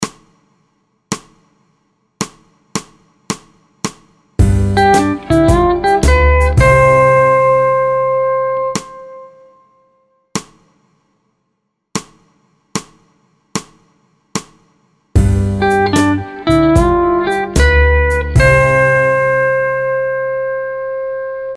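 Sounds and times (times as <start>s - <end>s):
musical vamp in C in four four time: 4.4s - 9.3s, 15.2s - 20.4s.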